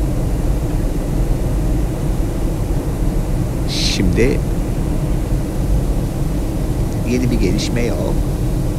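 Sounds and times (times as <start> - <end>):
airplane cabin drone in flight: 0.0 - 8.7
speech: 4.0 - 4.6, 7.1 - 8.3.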